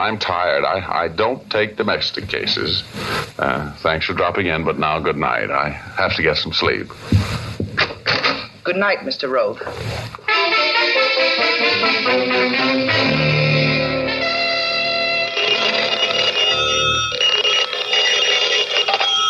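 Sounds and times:
speech: 0:00.0 - 0:07.5, 0:08.7 - 0:10.7, 0:11.8 - 0:13.4
shifting sustained musical tones: 0:10.3 - 0:18.3
telephone ringing with metallic jangle: 0:14.3 - 0:19.2.

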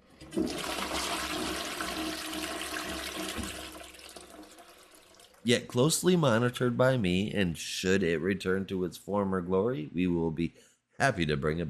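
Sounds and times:
toilet flushing with rushing gurgling water: 0:00.0 - 0:05.5
speech: 0:05.4 - 0:11.6.

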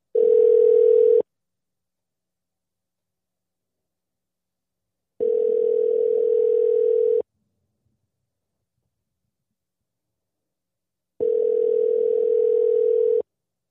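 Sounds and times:
outgoing phone call ringing tone: 0:00.2 - 0:01.2, 0:05.2 - 0:07.2, 0:11.2 - 0:13.2.

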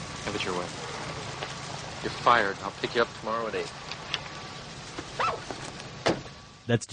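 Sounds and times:
speech: 0:00.3 - 0:00.9, 0:02.0 - 0:03.8, 0:06.7 - 0:06.9
dog barking in a movie scene: 0:05.2 - 0:05.5.

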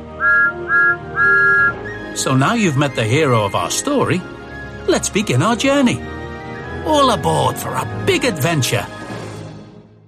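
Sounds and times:
small six-wheeled steam tank engine whistle: 0:00.2 - 0:02.0
speech: 0:02.2 - 0:06.2, 0:06.9 - 0:09.0.

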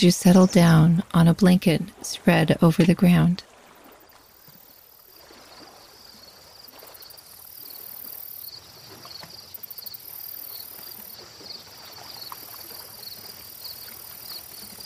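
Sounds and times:
speech: 0:00.0 - 0:03.5
water: 0:00.0 - 0:14.8
crickets chirping in a forest at dusk: 0:03.8 - 0:14.8.

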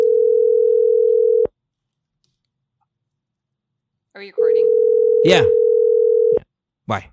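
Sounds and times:
telephone ringback tone of an outgoing phone call: 0:00.0 - 0:01.5, 0:04.6 - 0:06.4
speech: 0:04.2 - 0:05.6, 0:06.9 - 0:07.1.

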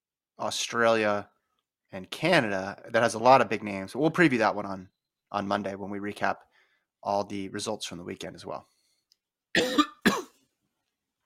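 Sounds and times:
speech: 0:00.4 - 0:01.3, 0:01.9 - 0:08.7, 0:09.5 - 0:09.8
person giving loud coughs: 0:09.6 - 0:10.4.

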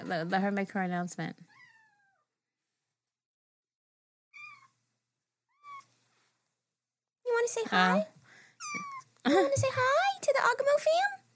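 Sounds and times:
speech: 0:00.1 - 0:01.5, 0:07.4 - 0:11.2
cat giving short high meows: 0:01.5 - 0:02.3, 0:04.3 - 0:04.8, 0:05.5 - 0:05.9, 0:08.6 - 0:09.1.

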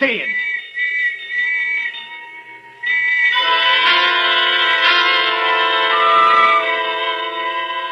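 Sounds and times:
speech: 0:00.0 - 0:00.5
loud sustained shrill whistles blaring: 0:00.0 - 0:07.7.

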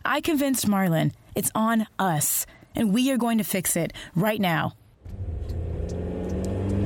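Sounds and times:
speech: 0:00.1 - 0:04.8
car engine revving as the vehicle pulls away: 0:05.1 - 0:06.8.

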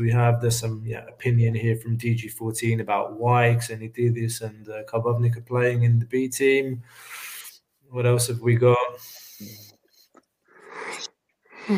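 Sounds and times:
speech: 0:00.0 - 0:07.3, 0:07.9 - 0:09.7
short breathy noises: 0:06.9 - 0:07.7, 0:09.0 - 0:11.7
person yawning: 0:10.8 - 0:11.7.

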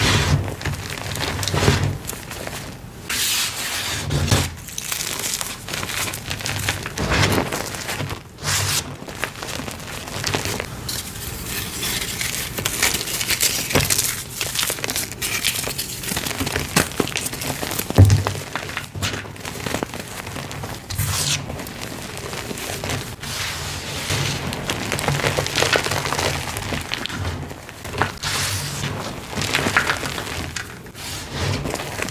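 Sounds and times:
gym chalk being crushed: 0:00.0 - 0:32.0.

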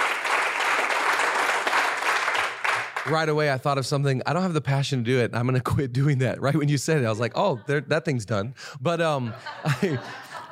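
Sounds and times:
audience clapping for a pastor: 0:00.0 - 0:03.6
speech: 0:03.1 - 0:10.2
laughter: 0:06.5 - 0:08.2, 0:09.0 - 0:10.5.

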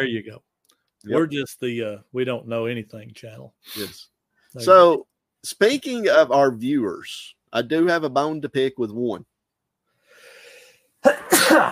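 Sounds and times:
speech: 0:00.0 - 0:09.3, 0:11.0 - 0:11.7
person sneezing: 0:03.7 - 0:04.0, 0:11.0 - 0:11.7.

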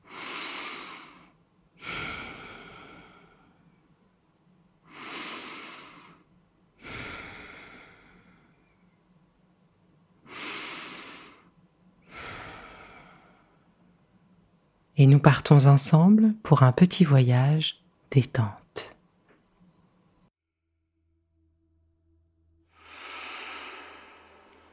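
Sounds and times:
deep breathing during a guided relaxation exercise: 0:00.0 - 0:03.9, 0:04.8 - 0:09.0, 0:10.2 - 0:14.0, 0:22.8 - 0:24.7
speech: 0:15.0 - 0:19.0.

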